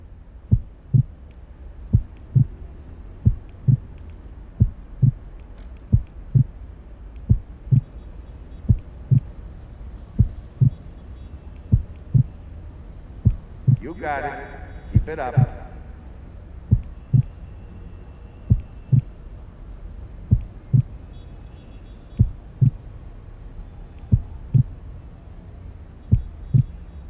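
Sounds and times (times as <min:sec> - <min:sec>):
low heartbeat thumping in lub-dub beats: 0:00.5 - 0:01.1, 0:01.9 - 0:02.6, 0:03.2 - 0:03.9, 0:04.6 - 0:06.6, 0:07.2 - 0:07.9, 0:08.6 - 0:09.4, 0:10.1 - 0:10.8, 0:11.7 - 0:12.3, 0:13.2 - 0:13.9, 0:14.9 - 0:15.6, 0:16.7 - 0:17.3, 0:18.5 - 0:19.1, 0:20.3 - 0:20.9, 0:22.2 - 0:22.8, 0:24.1 - 0:24.7, 0:26.1 - 0:26.7
speech: 0:13.9 - 0:15.6.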